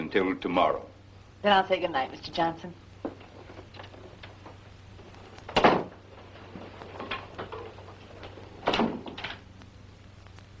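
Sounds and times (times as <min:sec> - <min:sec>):
speech: 0:00.1 - 0:03.2
door thudding shut: 0:05.5 - 0:06.0, 0:08.6 - 0:09.4.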